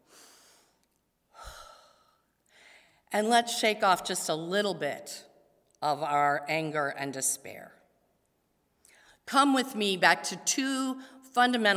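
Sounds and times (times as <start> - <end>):
deep breath taken by a preacher during a sermon: 0.0 - 3.1
speech: 3.1 - 7.8, 9.3 - 11.7.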